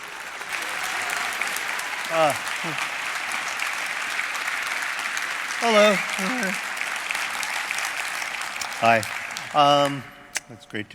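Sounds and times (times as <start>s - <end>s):
audience applause from many hands: 0.0s - 10.2s
speech: 2.1s - 2.9s, 5.6s - 6.7s, 8.8s - 10.9s
person whooping: 5.6s - 6.6s.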